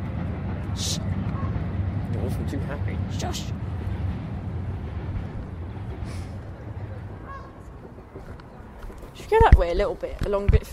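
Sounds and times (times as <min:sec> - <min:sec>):
outdoor rumbling noise: 0:00.0 - 0:10.7
speech: 0:00.8 - 0:01.1, 0:02.3 - 0:03.9, 0:09.3 - 0:10.7
geese honking: 0:00.8 - 0:01.7, 0:06.0 - 0:08.2.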